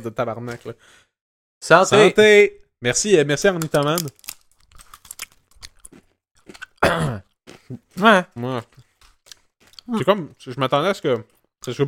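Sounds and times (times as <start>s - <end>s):
speech: 0.0s - 4.3s, 6.9s - 8.8s, 9.9s - 11.8s
chewing a crunchy snack: 4.0s - 11.8s.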